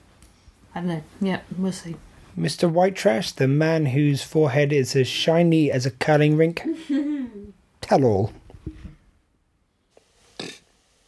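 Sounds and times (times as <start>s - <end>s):
speech: 0.8s - 8.8s
short low croaky burp: 10.4s - 10.6s.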